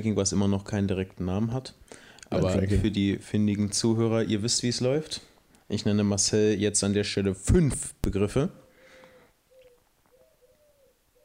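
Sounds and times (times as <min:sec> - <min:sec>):
speech: 0:00.0 - 0:08.6
pigeon cooing: 0:09.0 - 0:11.2.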